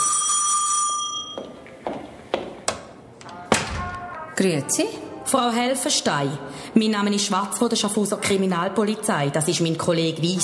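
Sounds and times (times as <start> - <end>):
bright electric doorbell ringing: 0.0 - 1.5
speech: 1.4 - 1.6, 4.4 - 10.4.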